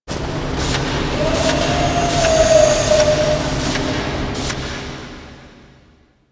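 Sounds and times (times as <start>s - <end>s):
mining machines on an asteroid: 0.1s - 4.4s
asteroid ambience: 0.5s - 4.9s.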